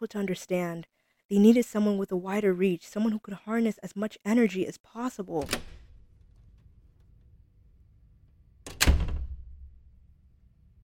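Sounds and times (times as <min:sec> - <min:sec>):
speech: 0:00.0 - 0:05.8
door latch clunk: 0:05.4 - 0:06.0, 0:08.6 - 0:09.7.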